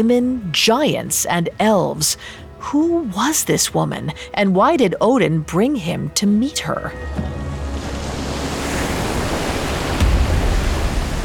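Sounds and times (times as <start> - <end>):
speech: 0.0 - 7.4
ocean waves crashing against a ship crossing a cold ocean: 6.9 - 11.2.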